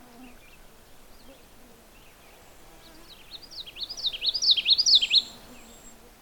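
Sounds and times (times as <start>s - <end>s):
common yellowthroat warbler singing: 2.0s - 6.0s.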